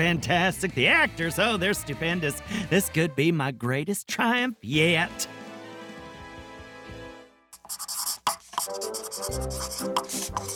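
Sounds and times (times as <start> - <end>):
speech: 0.0 - 5.3, 8.7 - 10.5
pencil scratching across a hard surface: 7.6 - 10.5.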